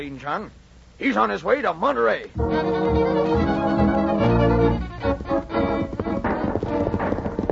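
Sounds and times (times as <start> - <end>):
speech: 0.0 - 3.4
many horses galloping: 3.0 - 7.5.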